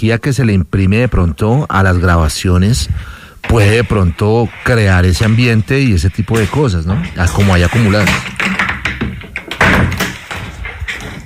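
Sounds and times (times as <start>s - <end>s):
speech: 0.0s - 8.5s
door rattling as it is opened: 2.9s - 11.2s.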